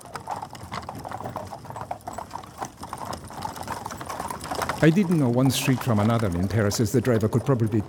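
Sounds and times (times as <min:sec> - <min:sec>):
hooves of a horse pulling a cab trotting on hard pavement in Paris: 0:00.0 - 0:07.8
speech: 0:04.8 - 0:07.8.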